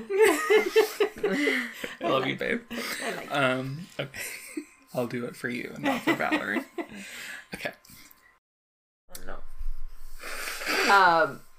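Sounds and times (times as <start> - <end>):
speech: 0.0 - 4.4, 5.0 - 7.8, 10.9 - 11.5
laughter: 0.0 - 4.7, 5.8 - 7.0
woman blowing her nose: 10.2 - 11.2.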